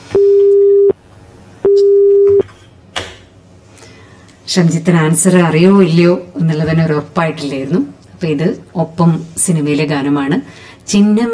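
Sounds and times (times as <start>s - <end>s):
telephone busy tone after a call is cut off: 0.1s - 1.0s, 1.7s - 2.4s
speech: 4.5s - 11.3s.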